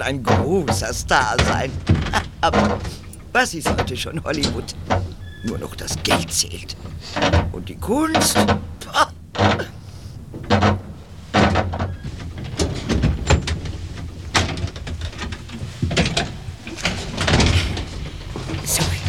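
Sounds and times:
speech: 0:00.0 - 0:09.7
home door opening with handle and latch: 0:00.0 - 0:19.0.

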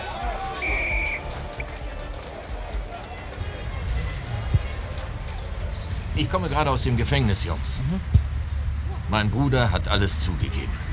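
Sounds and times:
busy crowd murmur: 0:00.0 - 0:06.5
referee's whistle blast starting the match: 0:00.6 - 0:01.2
speech: 0:06.2 - 0:08.1, 0:09.1 - 0:10.9.

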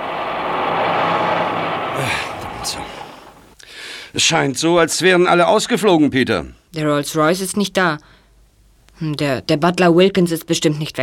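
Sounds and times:
heavy truck engine rumbling and winding down: 0:00.0 - 0:03.6
truck air brakes hissing: 0:00.0 - 0:03.6
speech: 0:02.0 - 0:02.8, 0:04.2 - 0:08.2, 0:09.0 - 0:11.0.

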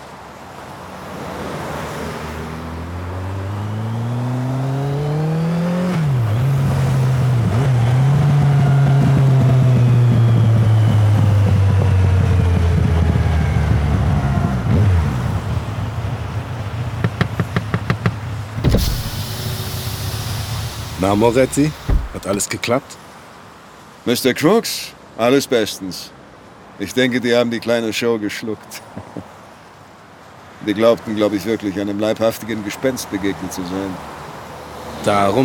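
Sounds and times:
steady traffic noise at a motorway rest area: 0:00.0 - 0:24.1, 0:26.0 - 0:27.5, 0:28.6 - 0:35.4
car engine humming and revving at a motorway rest area: 0:02.8 - 0:16.0, 0:18.6 - 0:22.4
solid thump: 0:18.6 - 0:22.4
speech: 0:21.1 - 0:23.0, 0:24.0 - 0:26.2, 0:26.8 - 0:29.1, 0:30.6 - 0:34.2, 0:35.0 - 0:35.4.

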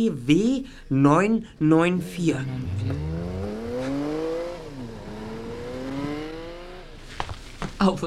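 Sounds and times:
speech: 0:00.0 - 0:03.1, 0:07.8 - 0:08.0
car engine revving and pulling away: 0:01.9 - 0:07.6.

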